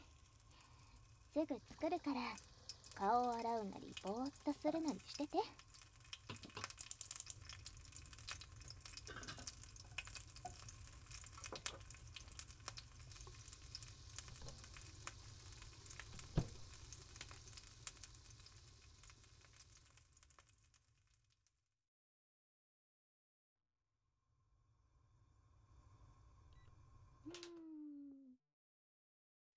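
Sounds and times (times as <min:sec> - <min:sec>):
quiet hiss: 0:00.0 - 0:20.6
eggs and bacon frying in a pan: 0:00.0 - 0:21.4
speech: 0:01.3 - 0:05.7.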